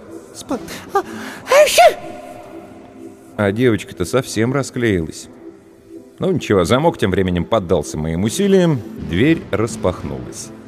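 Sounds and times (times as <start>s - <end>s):
speech: 0.4s - 2.3s, 3.4s - 5.4s, 6.2s - 10.6s
woman with a cold sneezing: 1.4s - 2.7s.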